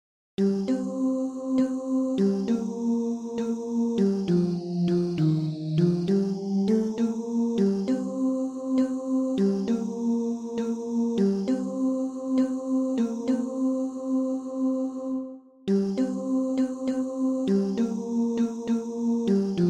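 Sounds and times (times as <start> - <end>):
tenors singing a sea shanty: 0.4 - 19.6.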